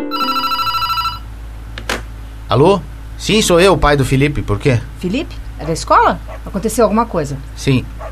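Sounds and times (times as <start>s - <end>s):
telephone ringing with an electronic ringtone: 0.1s - 1.3s
speech: 2.5s - 8.0s.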